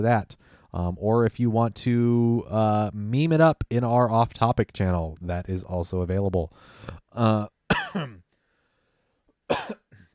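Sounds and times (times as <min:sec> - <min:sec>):
speech: 0:00.0 - 0:08.2
person coughing with phlegm: 0:07.7 - 0:08.2, 0:09.5 - 0:10.1
throat clearing from someone with phlegm: 0:07.7 - 0:08.2, 0:09.5 - 0:10.1.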